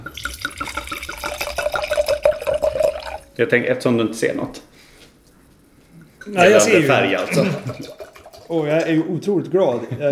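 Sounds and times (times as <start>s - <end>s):
wine pouring into a glass: 0.0s - 3.4s, 6.6s - 8.9s
speech: 3.4s - 4.7s, 6.3s - 10.1s
laughter: 6.7s - 8.0s.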